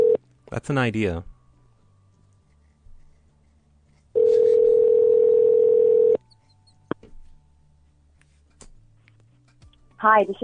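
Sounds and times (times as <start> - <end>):
speech: 0.5 - 1.3, 10.0 - 10.4
telephone dial tone: 4.2 - 6.2.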